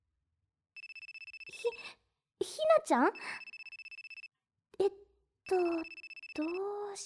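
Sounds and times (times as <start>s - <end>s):
electronic mobile phone ringtone ringing: 0.8s - 1.8s, 3.2s - 4.3s, 5.5s - 6.6s
speech: 2.8s - 3.4s, 4.8s - 7.0s.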